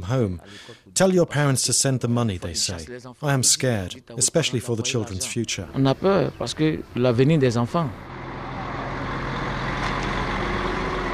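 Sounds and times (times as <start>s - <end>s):
speech: 0.1s - 8.2s
idling 30-ton cargo trucks with deep diesel rumble: 5.7s - 11.1s.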